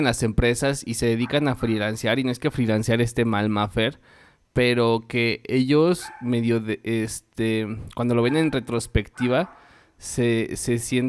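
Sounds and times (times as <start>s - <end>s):
speech: 0.0s - 11.0s
dog barking: 1.2s - 1.8s, 6.0s - 6.4s, 8.2s - 9.8s.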